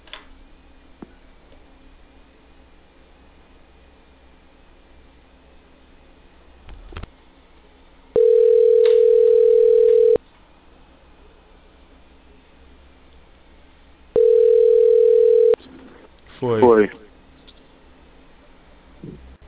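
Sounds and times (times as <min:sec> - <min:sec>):
ringback tone while calling a cell phone: 0:08.2 - 0:10.2, 0:14.2 - 0:15.6.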